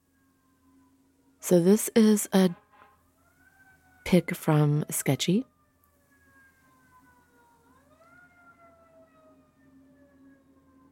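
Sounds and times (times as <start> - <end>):
speech: 1.5 - 2.6, 4.1 - 5.5
siren wailing outside as it passes: 3.3 - 10.8.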